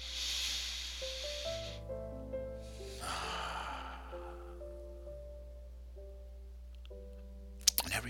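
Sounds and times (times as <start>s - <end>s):
slow deep breath drawn in and let out: 0.0s - 5.3s
soft sustained ambient music notes: 0.0s - 8.0s.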